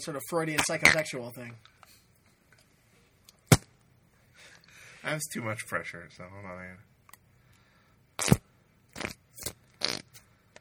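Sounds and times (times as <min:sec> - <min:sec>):
speech: 0:00.0 - 0:01.8, 0:05.0 - 0:06.9
fart sound effect: 0:08.2 - 0:08.4, 0:09.0 - 0:10.1.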